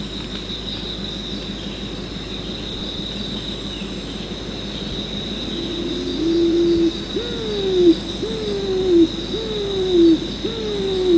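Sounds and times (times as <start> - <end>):
continuous high hum: 0.0 - 11.1
pigeon uttering drawn-out tonal coos: 5.6 - 11.1.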